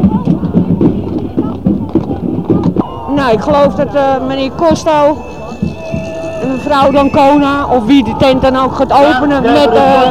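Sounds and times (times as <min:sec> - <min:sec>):
police horse hooves clip-clopping on a small road: 0:00.0 - 0:08.4
low murmur of crowd voices: 0:00.0 - 0:10.1
speech: 0:03.3 - 0:05.3, 0:06.6 - 0:10.1.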